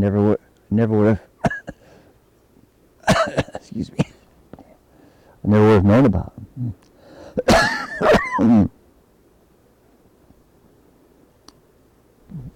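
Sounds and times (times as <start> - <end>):
speech: 0.0 - 1.3, 3.3 - 4.1, 5.4 - 6.8, 7.4 - 8.7
harsh coughing and throat clearing: 1.4 - 1.9, 3.0 - 4.3, 6.6 - 8.8
faint click: 11.4 - 11.6.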